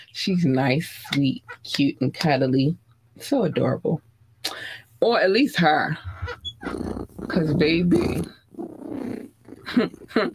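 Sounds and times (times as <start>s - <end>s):
speech: 0.2s - 10.3s
human voice imitating a cat's purr: 6.0s - 10.3s.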